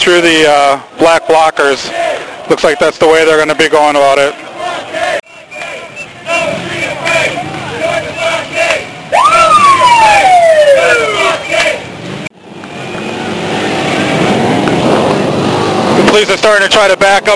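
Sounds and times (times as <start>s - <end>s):
speech: 0.0s - 4.5s, 16.1s - 17.3s
motorcycle engines revving: 0.0s - 17.3s
loud roaring crowd: 1.0s - 3.1s, 4.2s - 12.2s.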